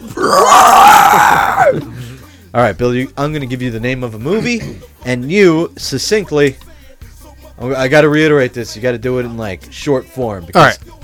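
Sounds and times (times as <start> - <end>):
man's voice imitating a giant movie monster roar: 0.0 - 2.0
speech: 2.5 - 6.7, 7.6 - 11.0.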